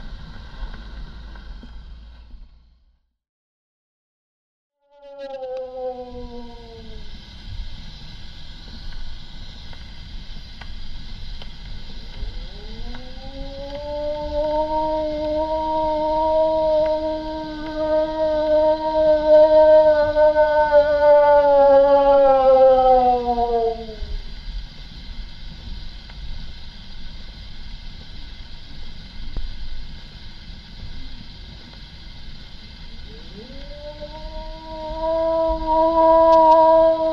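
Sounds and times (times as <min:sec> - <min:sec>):
low rumbling background: 0:00.0 - 0:03.1, 0:05.0 - 0:37.1
wolf-like howl: 0:04.8 - 0:07.2, 0:12.2 - 0:24.2, 0:33.1 - 0:37.1.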